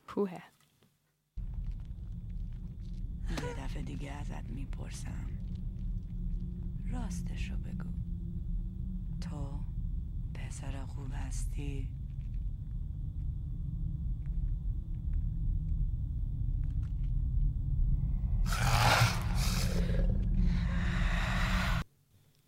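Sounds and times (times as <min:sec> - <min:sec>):
speech: 0:00.2 - 0:00.6, 0:03.7 - 0:05.4, 0:06.9 - 0:08.0, 0:09.2 - 0:09.7, 0:10.3 - 0:12.0
deep steady rumbling growl: 0:01.4 - 0:21.8
harsh lion-like film monster roar: 0:18.4 - 0:21.8.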